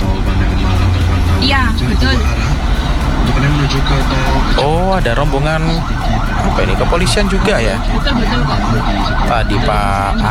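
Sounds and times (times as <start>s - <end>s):
laughter: 0.0s - 10.2s
road traffic on the way to a toll road: 0.0s - 10.2s
speech: 1.4s - 2.4s, 3.7s - 10.2s.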